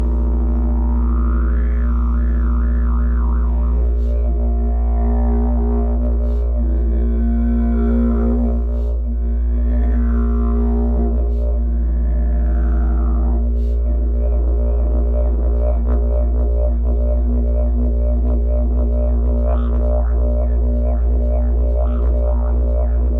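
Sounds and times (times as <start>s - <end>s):
didgeridoo: 0.0s - 23.1s
ultrabass synth: 0.0s - 23.1s.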